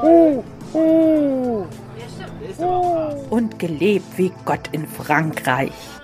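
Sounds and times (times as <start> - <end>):
eagle-owl hooting: 0.0 - 3.4
speech: 3.6 - 6.0.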